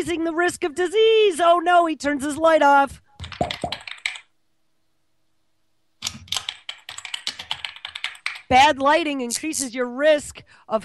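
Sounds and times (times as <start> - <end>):
speech: 0.0 - 3.8, 8.5 - 10.8
rapid typing on a computer keyboard: 3.2 - 4.3, 6.0 - 8.5.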